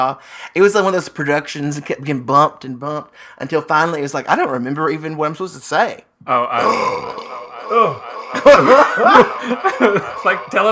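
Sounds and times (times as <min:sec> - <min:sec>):
speech: 0:00.0 - 0:10.6
loud drawn-out throaty burp: 0:06.3 - 0:09.2
laughter: 0:06.6 - 0:10.6.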